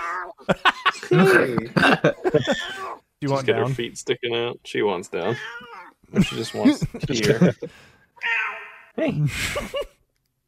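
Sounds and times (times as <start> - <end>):
female cat meowing: 0.0 - 0.4, 5.3 - 6.0, 8.2 - 8.9
noise: 0.0 - 10.4
speech: 0.3 - 8.4, 9.0 - 9.9
laughter: 0.4 - 3.4, 6.1 - 7.7, 9.2 - 9.9.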